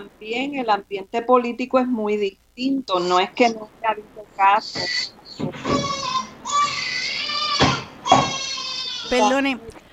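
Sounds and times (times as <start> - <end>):
speech: 0.0 - 6.1, 9.1 - 9.8
small child crying in long high-pitched wails: 4.8 - 9.4.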